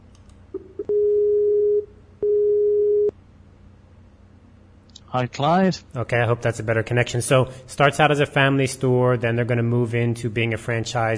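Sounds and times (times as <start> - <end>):
telephone tones while redialing a call: 0.6 - 3.1
speech: 5.2 - 11.1.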